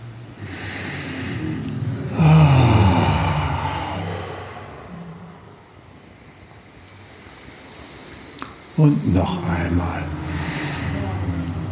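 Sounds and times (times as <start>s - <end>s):
deep voiced exhalations during a breathing exercise: 0.4s - 5.8s, 8.4s - 11.7s
speech: 8.8s - 10.5s.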